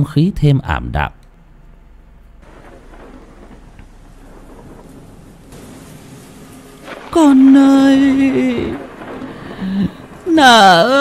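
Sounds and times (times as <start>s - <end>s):
speech: 0.0s - 1.2s, 7.1s - 8.8s, 9.8s - 11.0s
low rumbling: 1.1s - 11.0s
steady rain outside at night: 2.4s - 11.0s.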